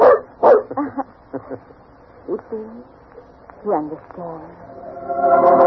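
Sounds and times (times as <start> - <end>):
dog barking: 0.0 - 0.7
laughter: 0.7 - 1.8
speech: 3.6 - 5.5.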